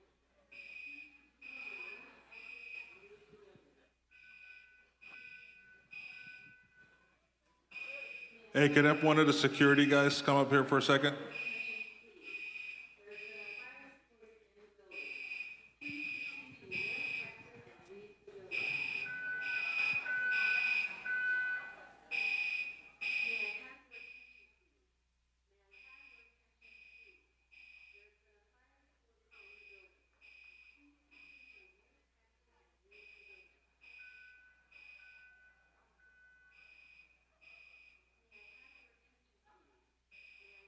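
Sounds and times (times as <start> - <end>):
fire alarm blaring in repeating electronic pulses: 0.5 - 3.4, 4.1 - 14.1, 14.8 - 24.6, 25.7 - 28.2, 29.3 - 32.2, 32.8 - 39.1, 40.0 - 40.6
crowd of voices: 7.8 - 12.4, 15.8 - 23.6
crowd movement: 8.0 - 11.6, 15.8 - 23.2
speech: 8.6 - 11.4.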